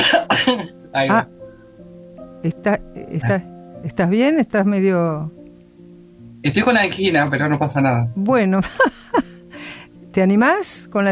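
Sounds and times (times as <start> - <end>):
harsh hacking coughing fit: 0.0 - 0.8
speech: 1.0 - 1.4, 2.4 - 5.4, 6.4 - 9.3, 10.1 - 11.1.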